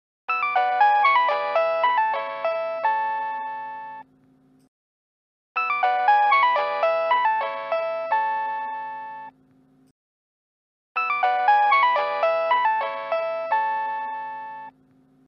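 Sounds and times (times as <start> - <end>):
Nokia phone ringtone: 0.3 - 4.0, 5.6 - 9.3, 11.0 - 14.7.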